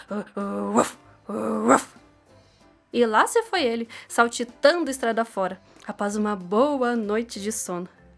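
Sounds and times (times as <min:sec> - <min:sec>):
speech: 0:00.1 - 0:01.9, 0:02.9 - 0:08.0
human voice imitating a startled dog growling and yelping: 0:00.1 - 0:02.0.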